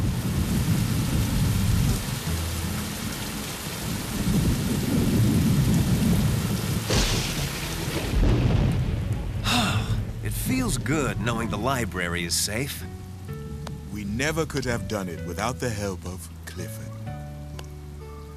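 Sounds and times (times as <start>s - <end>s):
deep rolling thunder: 0.0s - 2.2s, 3.9s - 11.8s
steady heavy rain in thunderstorm: 0.0s - 18.3s
sharp thunder crack: 4.2s - 11.8s
speech: 10.8s - 12.9s, 14.2s - 16.8s.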